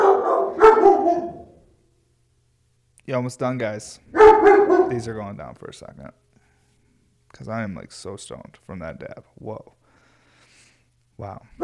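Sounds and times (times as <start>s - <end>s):
dog barking: 0.0s - 1.6s, 4.1s - 5.1s
speech: 3.1s - 6.2s, 7.3s - 9.8s, 11.2s - 11.6s.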